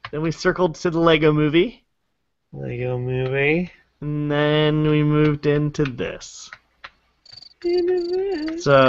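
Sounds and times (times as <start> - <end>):
speech: 0.1 - 1.8, 2.5 - 6.6, 7.6 - 8.8
cricket chirping sound effect: 7.2 - 8.8.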